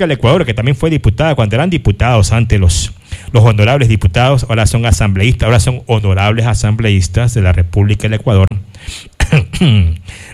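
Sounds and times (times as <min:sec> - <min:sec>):
speech: 0:00.0 - 0:10.3
person coughing: 0:09.1 - 0:10.2
person clearing throat: 0:09.2 - 0:10.1.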